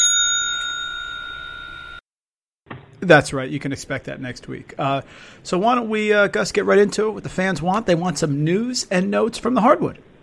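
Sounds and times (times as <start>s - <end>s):
single bright bell ding: 0.0s - 2.0s
speech: 3.0s - 10.1s.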